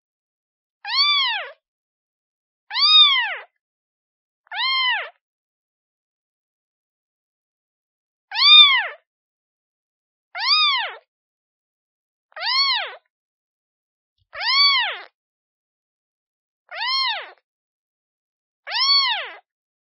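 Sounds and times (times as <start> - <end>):
kitten meowing calling for its mother: 0.9 - 1.6, 2.7 - 3.5, 4.5 - 5.2, 8.3 - 9.0, 10.4 - 11.0, 12.4 - 13.0, 14.4 - 15.1, 16.7 - 17.4, 18.7 - 19.4.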